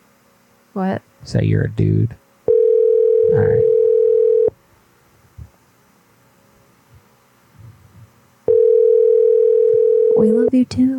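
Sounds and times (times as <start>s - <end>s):
speech: 0.7s - 2.2s, 3.3s - 3.7s, 10.5s - 10.9s
telephone ringing tone: 2.5s - 4.6s, 8.5s - 10.5s.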